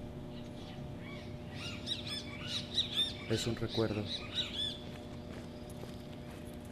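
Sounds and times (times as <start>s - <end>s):
soft steady hum: 0.0s - 6.6s
several birds chirping and singing: 0.1s - 6.6s
speech: 3.3s - 4.6s.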